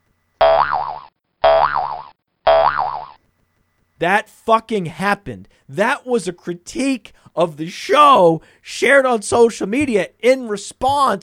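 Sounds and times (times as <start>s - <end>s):
cartoonish boing sound effect: 0.4s - 3.2s
speech: 4.0s - 11.2s.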